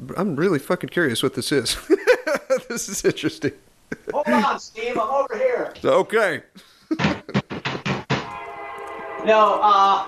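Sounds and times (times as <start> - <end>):
speech: 0.0 - 1.9, 2.5 - 7.2, 9.2 - 10.0
train horn blast: 8.3 - 10.0.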